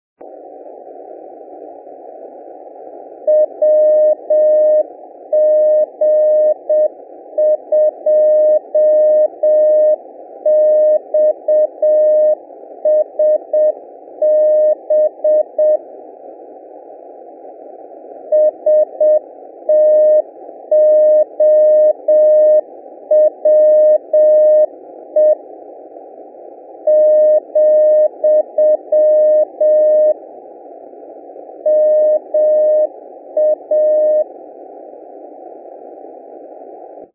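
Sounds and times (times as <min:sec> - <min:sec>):
482kHz CW morse code radio signal: 0:03.3 - 0:15.8, 0:18.3 - 0:25.4, 0:26.8 - 0:30.2, 0:31.6 - 0:34.3.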